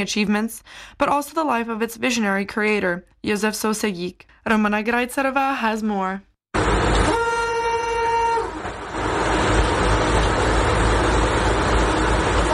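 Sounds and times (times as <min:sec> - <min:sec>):
speech: 0:00.0 - 0:06.3
vintage streamlined Tatra railcar Slovenská strela horn blast: 0:06.6 - 0:08.7, 0:12.2 - 0:12.5
vintage streamlined Tatra railcar Slovenská strela running: 0:06.6 - 0:12.5.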